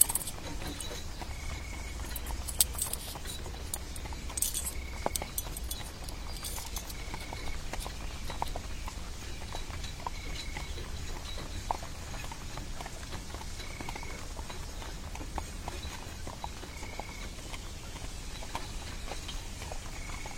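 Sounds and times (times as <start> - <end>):
sharp clinks: 0.0 - 8.6
horse hooves clopping: 0.0 - 20.3.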